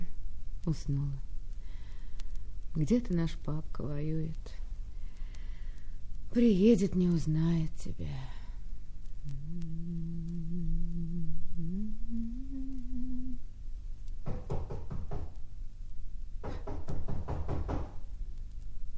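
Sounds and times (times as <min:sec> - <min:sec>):
steady low humming tone: 0:00.0 - 0:14.4
speech: 0:00.7 - 0:01.3, 0:02.8 - 0:04.6, 0:06.3 - 0:08.4
firm rapid knocking on a door: 0:14.2 - 0:15.4, 0:16.4 - 0:18.0.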